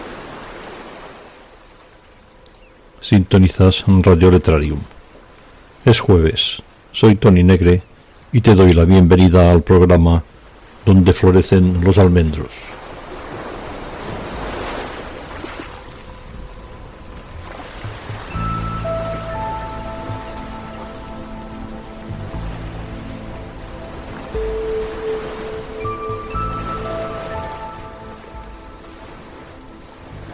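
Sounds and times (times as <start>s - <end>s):
Mediterranean Sea waves washing in at Mallorca, Spain: 0.0s - 7.0s, 9.8s - 30.3s
speech: 3.0s - 5.0s, 5.8s - 12.8s
soft tonal music: 15.6s - 30.3s.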